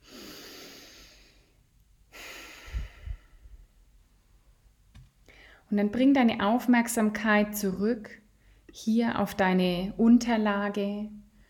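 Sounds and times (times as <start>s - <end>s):
deep breath during a guided meditation: 0.0s - 3.8s, 5.3s - 5.7s
speech: 5.7s - 8.2s, 8.8s - 11.2s.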